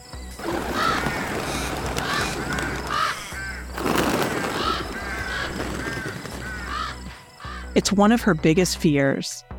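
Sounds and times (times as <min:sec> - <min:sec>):
dense flock of crows cawing: 0:00.4 - 0:07.8
speech: 0:07.8 - 0:09.5.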